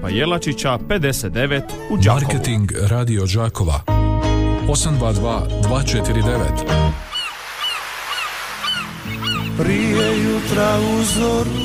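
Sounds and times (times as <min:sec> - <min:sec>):
speech: 0:00.0 - 0:04.0, 0:04.7 - 0:07.1, 0:09.6 - 0:11.6
seagulls calling by the sea: 0:07.0 - 0:11.6.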